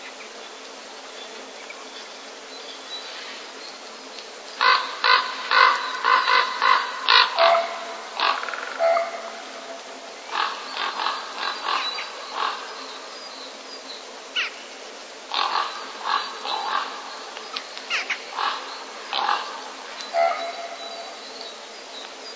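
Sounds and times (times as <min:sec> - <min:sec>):
background hiss: 0:00.0 - 0:22.3
common raven giving courtship croaks in the breeding season: 0:04.6 - 0:13.1, 0:15.3 - 0:21.2.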